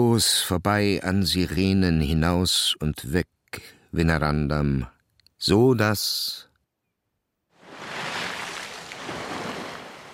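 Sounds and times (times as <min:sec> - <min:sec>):
speech: 0:00.0 - 0:06.5
sea foaming against a cliff: 0:07.7 - 0:10.1.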